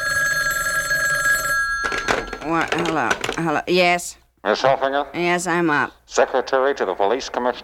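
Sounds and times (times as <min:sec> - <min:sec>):
bedside telephone ringing: 0:00.0 - 0:03.6
speech: 0:02.5 - 0:07.6.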